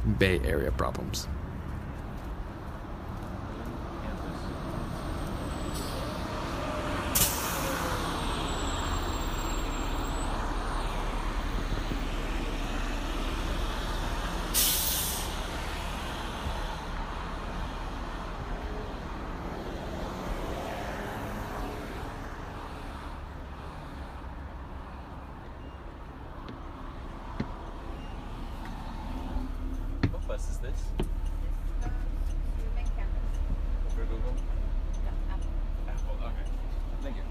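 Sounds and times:
speech: 0.0s - 1.4s
commuter bus engine rumbling: 0.0s - 37.2s
traffic noise: 0.0s - 37.2s
commuter bus brakes squealing: 4.0s - 17.9s, 22.5s - 37.2s
commuter bus air-brake hiss: 7.2s - 7.8s, 14.5s - 15.4s.

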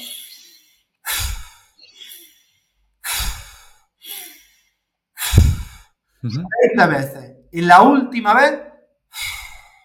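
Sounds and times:
forceful nose inhale and mouth exhale breathing: 0.0s - 6.3s, 9.1s - 9.8s
speech: 6.2s - 8.7s.

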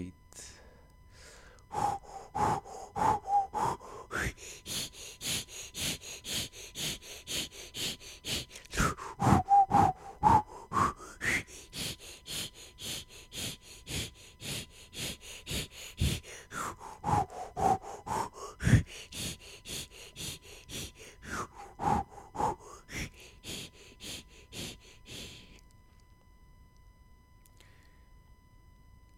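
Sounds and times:
group breathing hard in a fast rhythm: 0.4s - 25.7s
drawn-out vocal tones: 1.7s - 25.4s.

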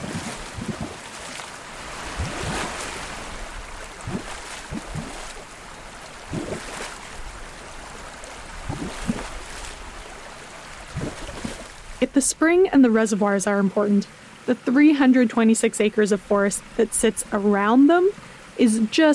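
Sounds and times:
stream rushing over small waterfalls: 0.0s - 19.1s
speech: 12.2s - 19.1s.

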